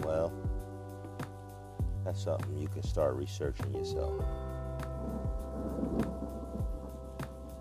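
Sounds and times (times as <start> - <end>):
speech: 0.1 - 0.5, 2.1 - 4.5
thunder rumbling from a storm: 4.9 - 7.5.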